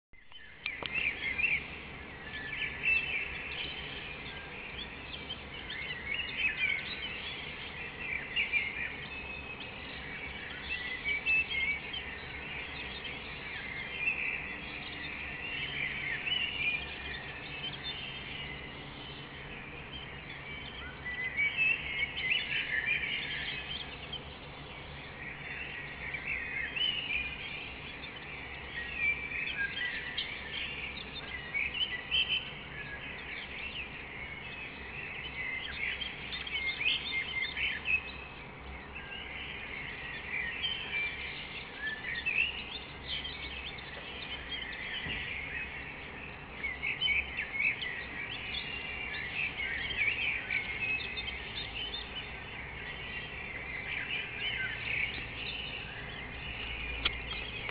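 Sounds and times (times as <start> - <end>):
birds singing: 0.2 - 57.6.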